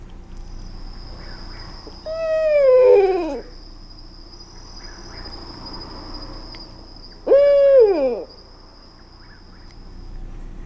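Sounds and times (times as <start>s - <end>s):
faint steady high tone: 0.4s - 10.3s
female Barred Owl you-all hoot: 1.2s - 3.6s, 7.2s - 8.4s
male Barred Owl you-all hoot: 2.0s - 3.6s, 7.2s - 8.4s.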